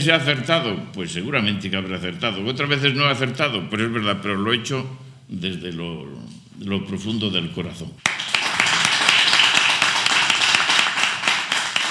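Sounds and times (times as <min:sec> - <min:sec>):
speech: 0:00.0 - 0:08.2
audience applause: 0:08.0 - 0:11.8.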